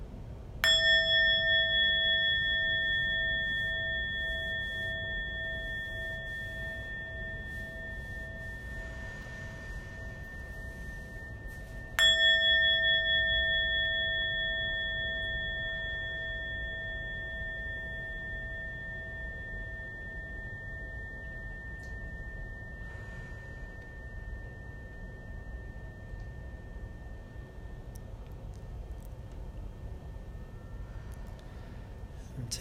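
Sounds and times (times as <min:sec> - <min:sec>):
meditation bell struck and ringing with bright sustained tones: 0:00.6 - 0:32.5.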